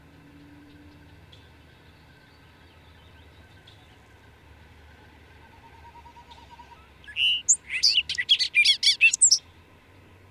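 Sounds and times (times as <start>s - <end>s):
bird song with whistled note and trilled phrases: 0.4s - 4.0s, 5.4s - 9.5s.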